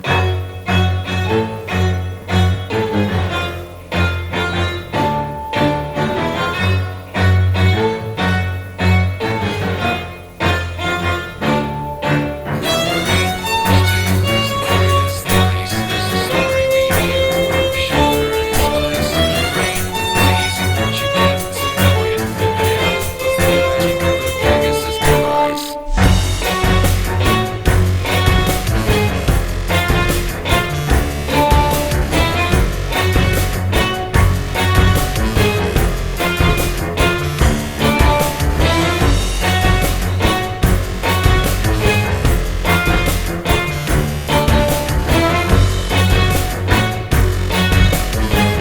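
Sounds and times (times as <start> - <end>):
cello: 0.0 - 48.5
violin: 0.0 - 48.5
drums: 12.1 - 48.5.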